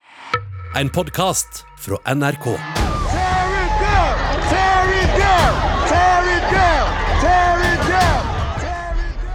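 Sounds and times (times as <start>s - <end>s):
speech: 0.8s - 2.8s
protest crowd of about 5000 people chanting in unison in Virginia: 2.3s - 9.3s
protesters shouting and yelling: 2.6s - 9.3s.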